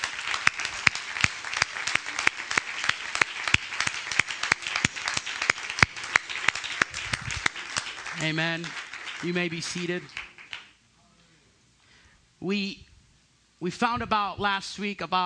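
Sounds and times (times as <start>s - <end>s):
audience applause with hand clapping: 0.0s - 10.8s
speech: 8.2s - 10.2s, 12.4s - 12.8s, 13.6s - 15.2s.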